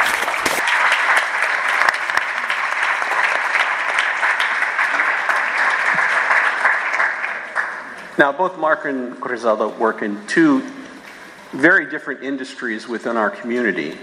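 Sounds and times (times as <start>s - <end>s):
audience applause welcoming a panelist at a panel event: 0.0s - 8.2s
speech: 8.2s - 10.8s, 11.5s - 14.0s.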